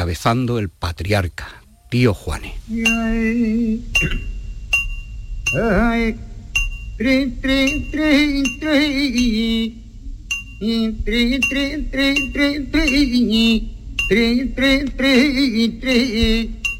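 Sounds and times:
speech: 0.0 - 4.4, 5.5 - 6.3, 7.0 - 9.8, 10.6 - 16.6
man's loud wavering sung vocal: 2.6 - 4.3, 5.5 - 6.4, 7.0 - 16.7
metallic hammer strikes on an anvil in a forge-themed song: 4.0 - 5.8.

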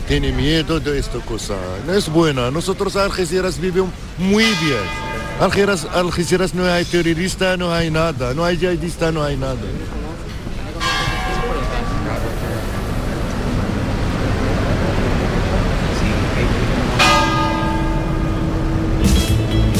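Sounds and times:
faint murmuring voices: 0.0 - 17.0
outdoor noise: 0.0 - 19.7
speech: 0.1 - 10.0
church bells ringing: 4.2 - 7.4, 10.6 - 13.9, 16.8 - 19.7.

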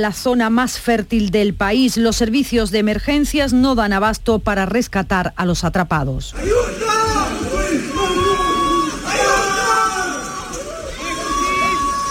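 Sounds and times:
speech: 0.0 - 6.8
people shouting for help during flood: 6.4 - 12.0.

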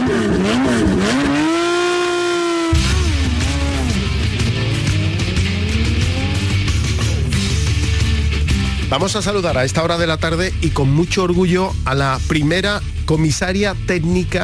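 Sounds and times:
rally car engine revving through gear changes: 0.0 - 8.9
speech: 8.9 - 14.4.

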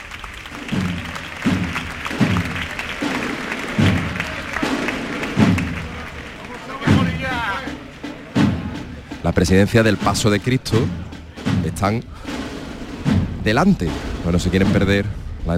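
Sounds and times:
large crowd applauding in a church atrium: 0.0 - 9.1
deep rhythmic thuds: 0.0 - 15.5
murmur of voices: 0.0 - 15.5
speech: 9.3 - 11.1, 11.8 - 12.4, 13.4 - 15.5.

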